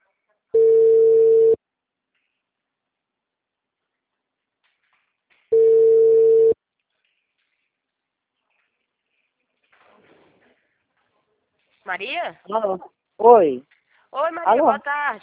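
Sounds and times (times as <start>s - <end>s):
telephone line ringing during an outgoing call: 0.6s - 1.6s, 5.5s - 6.6s
speech: 11.9s - 15.2s.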